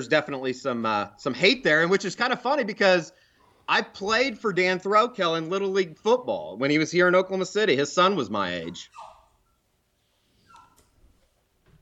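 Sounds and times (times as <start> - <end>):
speech: 0.0 - 9.1
puppy whimpering to get out of a room: 8.6 - 9.6, 10.3 - 11.0.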